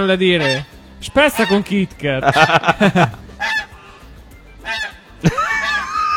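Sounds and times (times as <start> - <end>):
goose call device honking: 0.0 - 2.7, 3.3 - 3.8, 4.6 - 6.1
speech: 0.0 - 3.2
laughter: 2.2 - 3.4, 5.2 - 6.1.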